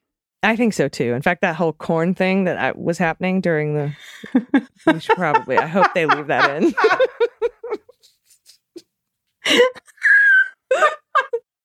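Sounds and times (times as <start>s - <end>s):
speech: 0.4s - 7.1s, 9.5s - 9.9s, 10.7s - 11.0s
breathy human laughter in quick pulses: 4.0s - 8.8s, 9.4s - 11.4s
person giggling: 4.2s - 8.8s, 9.4s - 11.5s.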